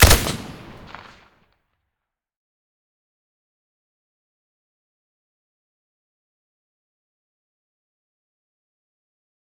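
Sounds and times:
AK-103 rifle firing with silencer: 0:00.0 - 0:01.2.

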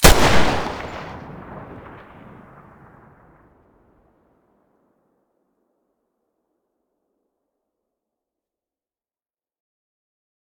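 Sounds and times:
deagle pistol muzzle blast: 0:00.0 - 0:01.3.

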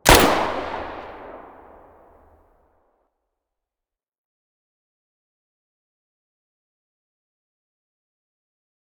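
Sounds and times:
distant weapon muzzle blasts: 0:00.0 - 0:02.3.

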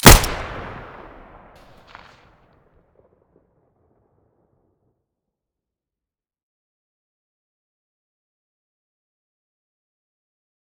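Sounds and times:
pistol gunshot: 0:00.0 - 0:01.3.

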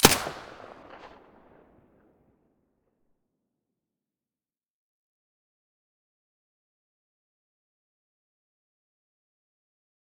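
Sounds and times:
MP5 submachine gun with silencer firing: 0:00.0 - 0:01.3.

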